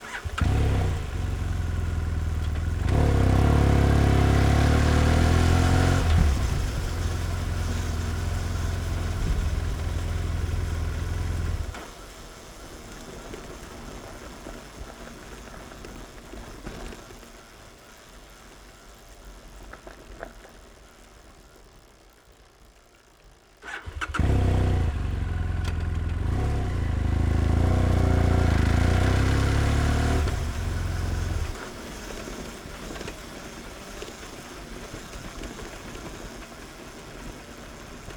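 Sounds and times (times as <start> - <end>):
4-stroke 798cc 2010 BMW F800R motorcycle wheels rolling with engine off: 0.0 - 38.1.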